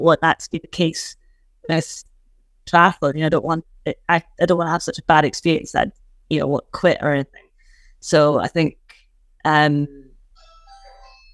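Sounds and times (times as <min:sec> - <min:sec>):
speech: 0:00.0 - 0:02.1, 0:02.7 - 0:07.4, 0:08.0 - 0:08.8, 0:09.4 - 0:10.0
electronic doorbell chiming a short melodic sequence: 0:10.4 - 0:11.3.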